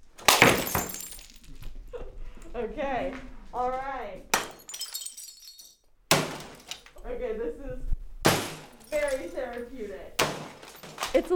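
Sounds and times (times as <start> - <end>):
shattering debris rattling: 0.0 - 1.7, 4.4 - 6.9, 8.3 - 11.3
objects being smashed in an enclosed rage room: 0.2 - 1.6, 4.4 - 6.9, 8.3 - 9.5, 10.2 - 11.2
speech: 2.6 - 4.3, 7.1 - 7.9, 8.9 - 10.5, 11.1 - 11.3.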